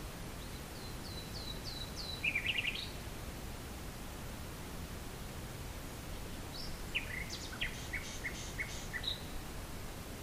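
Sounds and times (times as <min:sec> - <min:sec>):
faint hissing background noise: 0:00.0 - 0:10.2
common nightingale song: 0:00.3 - 0:03.1, 0:06.4 - 0:09.4.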